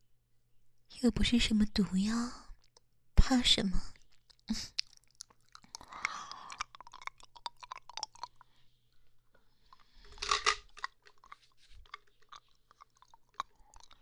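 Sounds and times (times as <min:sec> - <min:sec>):
speech: 0:01.0 - 0:02.4, 0:03.3 - 0:04.8
crunchy chewing of a pill: 0:04.0 - 0:14.0.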